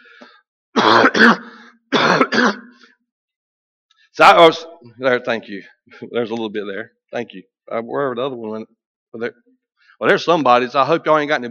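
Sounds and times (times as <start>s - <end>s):
throat-clearing coughs: 0.8s - 2.9s
speech: 1.1s - 1.6s, 2.2s - 2.6s, 4.2s - 9.4s, 10.0s - 11.4s.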